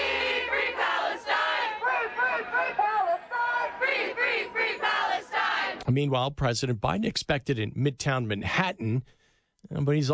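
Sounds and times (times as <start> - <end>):
protest crowd chanting at a university campus encampment: 0.0 - 5.8
speech: 5.9 - 10.1.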